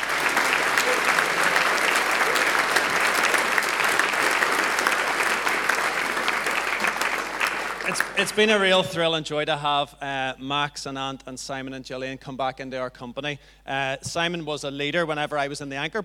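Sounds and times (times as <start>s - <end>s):
audience applause with many hands clapping: 0.0s - 8.6s
speech: 8.0s - 16.0s.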